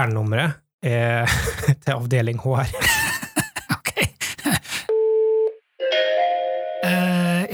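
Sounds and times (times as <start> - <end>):
speech: 0.0 - 3.1, 6.8 - 7.5
laughter: 2.8 - 4.9
telephone line tone of an incoming call: 4.9 - 6.8.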